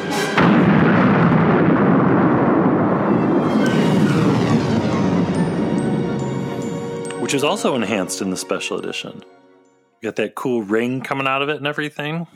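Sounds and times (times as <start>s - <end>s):
thunderous roar of rumbling debris: 0.3s - 7.1s
sci-fi space station explosion sound effect: 0.4s - 7.0s
speech: 7.3s - 9.4s, 10.0s - 12.3s.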